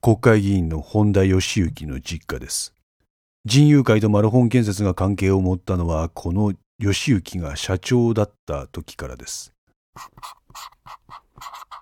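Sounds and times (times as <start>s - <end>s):
speech: 0.0s - 2.8s, 3.4s - 11.6s
felt-tip pen writing on paper: 10.0s - 11.8s.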